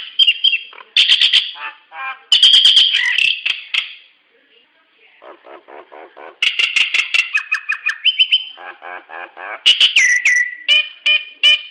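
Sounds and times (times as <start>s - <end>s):
hill myna calls: 1.0s - 3.4s, 5.2s - 11.6s.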